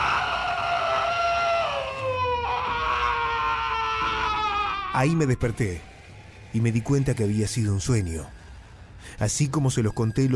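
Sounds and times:
long piercing horror movie style scream: 0.0 - 6.0
speech: 5.0 - 5.9, 6.5 - 8.4, 9.0 - 10.3.

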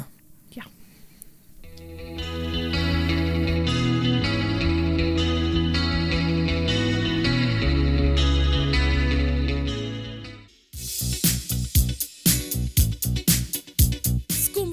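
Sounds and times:
speech: 0.5 - 0.8
song with sustained layered chords: 1.8 - 14.7
sharp repeated rhythmic hits: 10.5 - 14.5.

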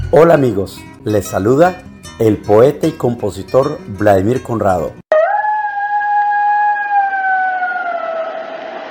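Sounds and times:
speech: 0.1 - 5.0
long howl: 5.1 - 8.8.

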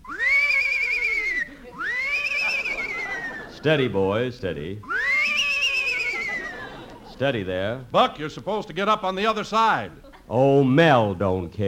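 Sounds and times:
horse whinnying as a man gets up on it: 0.2 - 3.5, 4.8 - 6.8
laughter: 0.4 - 4.3, 4.9 - 7.8, 9.7 - 10.5
speech: 3.6 - 4.9, 7.2 - 11.6.

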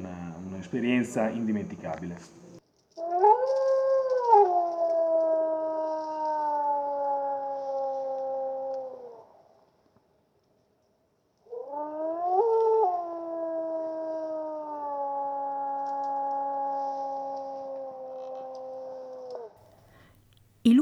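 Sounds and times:
speech: 0.6 - 2.4, 3.0 - 3.3
wolves howling in a park: 3.0 - 9.4, 11.5 - 20.0.

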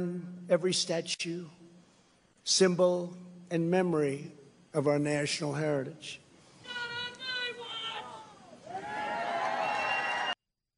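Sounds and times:
speech: 0.0 - 1.6, 2.4 - 6.2
large crowd cheering and shouting at a speech: 8.2 - 10.4.

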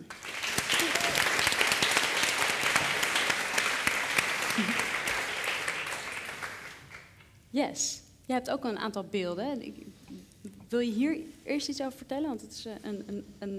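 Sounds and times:
crowd applauding: 0.0 - 7.2
speech: 4.6 - 4.8, 7.6 - 9.9, 10.7 - 13.5.

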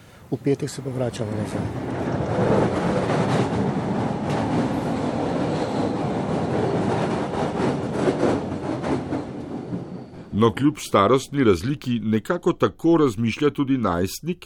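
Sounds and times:
speech: 0.3 - 2.8, 10.4 - 14.4
passenger train travelling to the seaside rumbling along the rails: 0.6 - 11.6.

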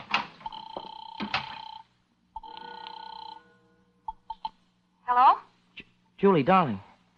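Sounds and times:
telephone with bright buzzy ring: 0.4 - 4.5
speech: 6.2 - 6.9.

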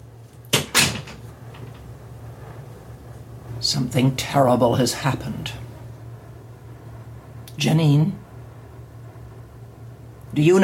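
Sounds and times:
low steady room hum: 0.0 - 10.6
door pulled shut with latching thud: 0.5 - 1.8
speech: 3.6 - 5.6, 7.6 - 8.2, 10.4 - 10.6.

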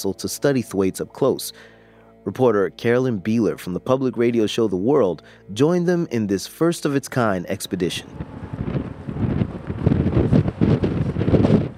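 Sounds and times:
speech: 0.0 - 8.5
gusty wind at a seaport buffeting the microphone: 7.8 - 11.7.

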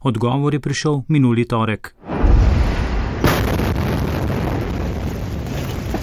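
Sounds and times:
speech: 0.0 - 2.4
massive explosion with roar of debris and echo: 2.0 - 6.0.

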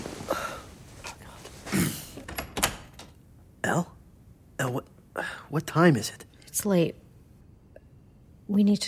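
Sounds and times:
faint breathy sounds: 0.2 - 1.5
door opening with sharp clunks and scraping rattles: 2.2 - 3.2
speech: 5.5 - 7.0, 8.5 - 8.8.

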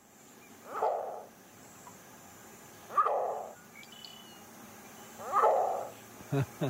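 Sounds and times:
green heron throaty squawks: 0.6 - 1.3, 2.9 - 3.6, 5.2 - 5.9.

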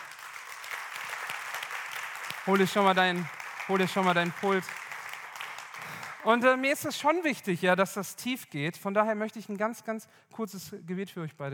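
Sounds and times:
audience applause: 0.0 - 6.6
speech: 2.4 - 4.8, 6.2 - 11.5.

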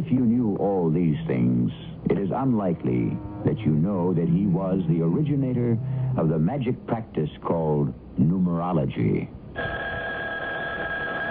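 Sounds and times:
speech: 0.0 - 9.8
telephone ringing with a bright electric bell tone: 9.6 - 11.2.

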